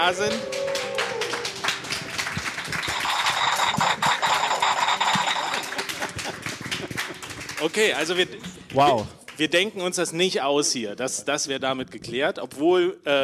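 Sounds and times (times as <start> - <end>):
speech: 0.0 - 0.6, 7.6 - 13.2
small live audience clapping in front of a stage: 0.0 - 10.3
laughter: 4.7 - 7.6.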